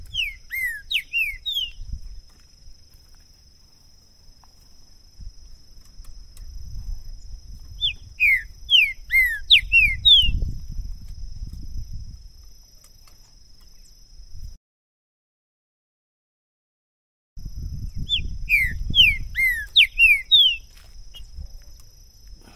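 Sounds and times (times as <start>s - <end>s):
continuous high hum: 0.0s - 14.6s, 17.4s - 22.5s
green-winged saltator whistling descending notes: 0.1s - 1.8s, 7.8s - 10.4s, 18.0s - 20.6s.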